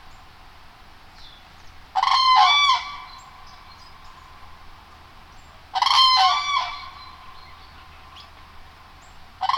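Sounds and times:
common crane trumpeting call: 0:02.0 - 0:03.3, 0:05.7 - 0:07.4, 0:09.4 - 0:09.5.

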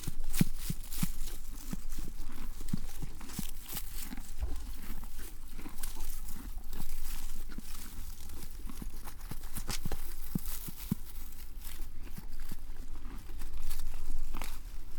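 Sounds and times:
horse chewing grass and hay: 0:00.0 - 0:14.9.

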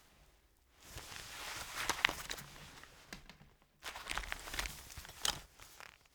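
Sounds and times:
headphones handling: 0:01.0 - 0:05.4.

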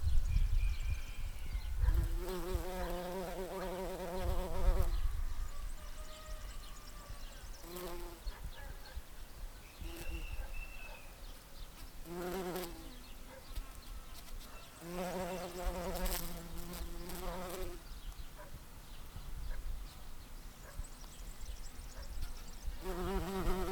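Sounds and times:
background noise: 0:00.0 - 0:23.7
bumblebee buzzing: 0:01.8 - 0:05.1, 0:07.6 - 0:08.2, 0:09.8 - 0:10.3, 0:12.0 - 0:13.0, 0:14.8 - 0:17.8, 0:22.7 - 0:23.7.

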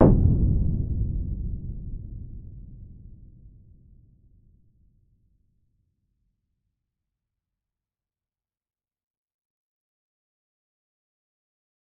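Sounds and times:
medium far explosion: 0:00.0 - 0:03.8.

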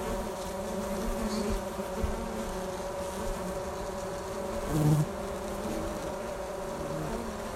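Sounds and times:
honey bees fanning on top of a hive cover: 0:00.0 - 0:07.5.

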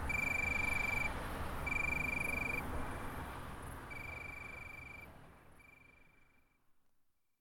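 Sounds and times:
tree cricket singing steady pure trills: 0:00.0 - 0:02.7, 0:03.9 - 0:06.5
background noise: 0:00.0 - 0:07.4.

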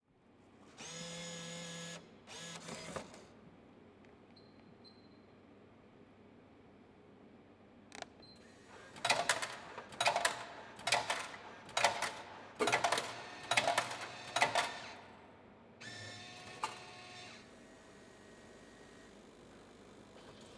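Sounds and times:
coffee vending machine: 0:08.4 - 0:15.2, 0:15.8 - 0:17.3.

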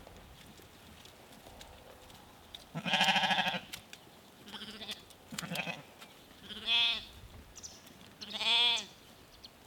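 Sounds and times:
small herd of sheep bleating in Norway: 0:02.8 - 0:03.6, 0:04.5 - 0:07.1, 0:08.2 - 0:08.9.

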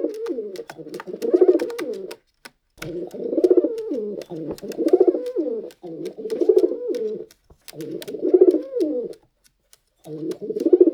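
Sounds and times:
pigeon cooing while walking: 0:00.0 - 0:02.2, 0:02.8 - 0:09.2, 0:10.0 - 0:10.9
light tapping: 0:00.0 - 0:10.9
speech: 0:00.3 - 0:01.1, 0:04.6 - 0:05.0.

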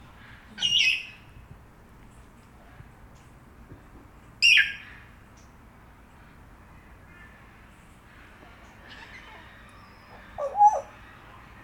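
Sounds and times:
grey parrot squawking: 0:10.1 - 0:11.0.

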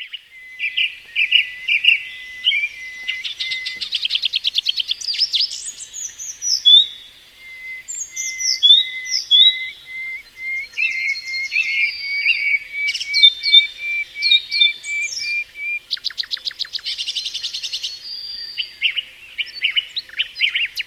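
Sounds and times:
bird calling: 0:00.0 - 0:20.8.

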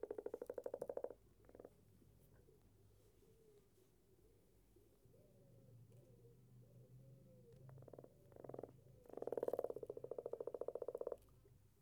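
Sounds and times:
common frog purring pulsed croaking in the UK: 0:00.0 - 0:01.7, 0:07.8 - 0:11.2.

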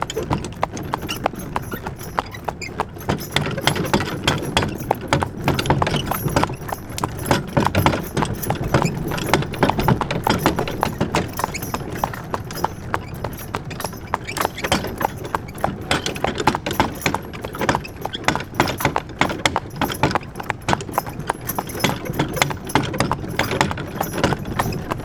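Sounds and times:
horse hooves clopping at an uneven walk: 0:00.0 - 0:25.0
wagon with dense wooden and metallic rattling: 0:00.0 - 0:25.0.

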